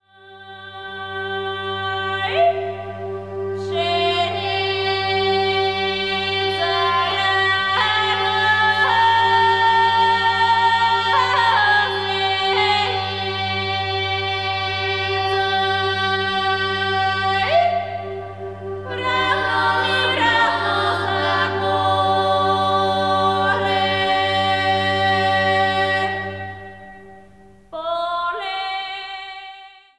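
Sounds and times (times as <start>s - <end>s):
female choir singing: 0.1s - 27.2s, 27.8s - 29.9s.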